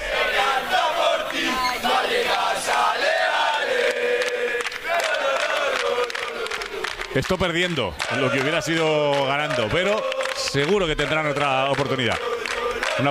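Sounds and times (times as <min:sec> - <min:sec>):
football fans chanting at the players' arrival in Leipzig: 0:00.0 - 0:13.0
speech: 0:07.2 - 0:12.3.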